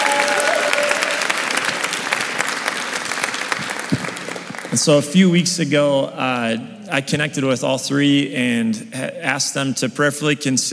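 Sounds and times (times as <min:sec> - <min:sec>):
room full of people applauding: 0:00.0 - 0:05.0
speech: 0:04.7 - 0:10.7.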